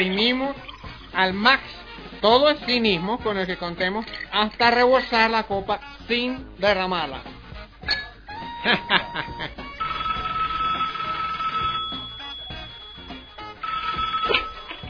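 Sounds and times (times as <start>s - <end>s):
speech: 0.0s - 8.0s, 8.6s - 9.6s
laughter: 8.4s - 9.8s
telephone ringing with a bell-like electronic ring: 9.7s - 14.8s.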